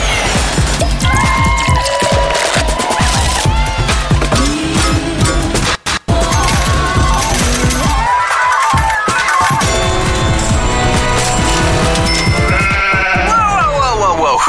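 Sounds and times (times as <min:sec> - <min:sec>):
dense busy mix of other sounds: 0:00.0 - 0:14.4
sheep bleating: 0:12.1 - 0:13.7.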